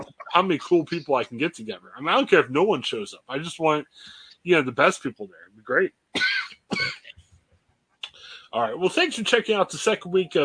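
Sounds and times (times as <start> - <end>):
speech: 0.4 - 7.0, 8.5 - 10.4
person coughing harshly: 6.2 - 7.1.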